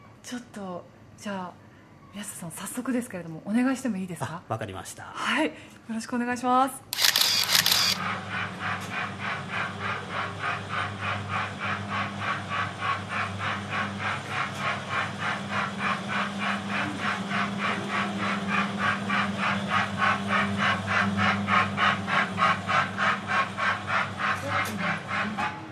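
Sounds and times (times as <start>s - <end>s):
speech: 0.3s - 7.0s
miniature steam locomotive chugging on a track delivering food: 7.0s - 25.6s.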